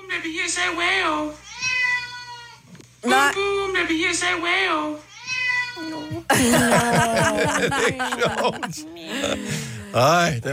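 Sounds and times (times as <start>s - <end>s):
speech: 0.2s - 1.5s, 3.0s - 5.1s, 5.8s - 10.5s
trained cat meowing as if talking: 1.4s - 2.6s, 5.1s - 6.1s
laughter: 6.1s - 9.9s.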